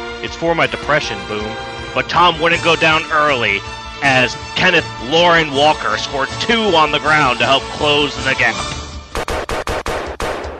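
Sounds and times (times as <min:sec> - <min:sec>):
speech: 0:00.2 - 0:08.8
gunshots: 0:09.1 - 0:10.5.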